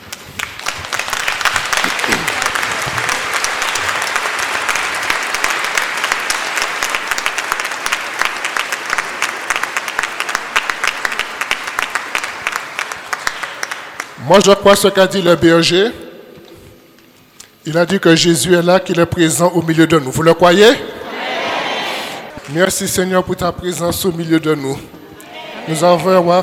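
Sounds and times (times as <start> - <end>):
church congregation applauding: 0.0 - 15.7, 21.8 - 23.8
speech: 14.3 - 16.0, 17.6 - 21.0, 22.5 - 25.0, 25.6 - 26.4.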